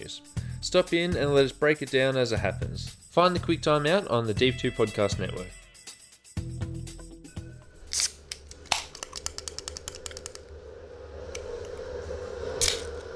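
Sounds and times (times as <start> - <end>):
speech: 0.1 - 5.6
beer bottle handled and opened: 7.8 - 10.5, 12.6 - 13.1
beer spraying over a computer with fizzy hiss: 7.9 - 10.4.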